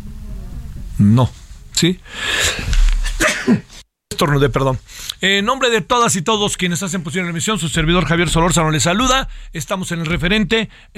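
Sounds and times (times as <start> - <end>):
speech: 1.0 - 2.7, 3.5 - 10.9
person sneezing: 2.2 - 3.8.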